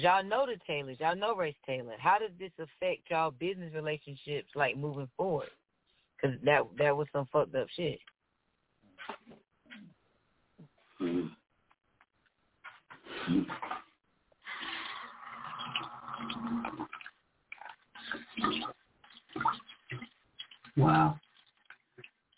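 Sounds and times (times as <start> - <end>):
speech: 0.0 - 5.6, 6.2 - 8.1, 11.0 - 11.4, 13.2 - 13.8, 18.1 - 18.8, 19.4 - 20.0, 20.8 - 21.2
water pouring: 14.5 - 22.3
water trickling: 15.5 - 22.3.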